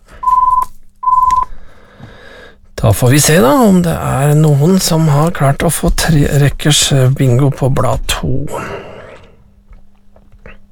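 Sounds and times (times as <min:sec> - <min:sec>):
telephone ringing with electronic tones: 0:00.2 - 0:01.5
speech: 0:02.8 - 0:08.8.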